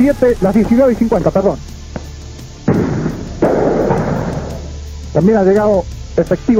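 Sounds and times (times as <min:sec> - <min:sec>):
speech: 0:00.0 - 0:01.7, 0:05.2 - 0:06.5
gunshots and tear gas canisters fired by police during a street riot: 0:00.0 - 0:04.9.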